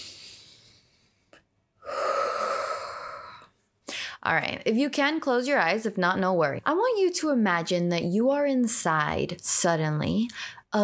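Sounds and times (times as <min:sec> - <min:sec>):
deep breath during a guided relaxation exercise: 0:00.0 - 0:04.2
speech: 0:04.2 - 0:10.8.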